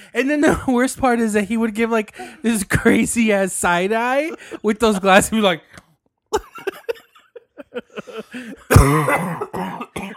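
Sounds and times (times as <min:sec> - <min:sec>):
speech: 0:00.1 - 0:07.0, 0:07.8 - 0:10.1
laughter: 0:04.1 - 0:05.4, 0:06.3 - 0:08.8
smoker's cough: 0:08.0 - 0:10.1.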